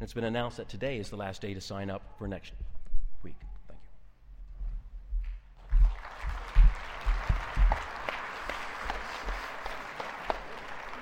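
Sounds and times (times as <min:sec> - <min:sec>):
speech: 0:00.1 - 0:03.5
audience applauding: 0:05.6 - 0:11.0.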